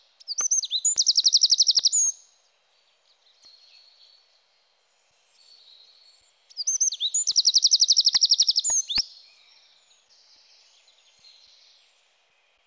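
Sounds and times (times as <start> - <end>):
Eurasian wren trilling: 0.2 - 2.1, 6.6 - 9.0.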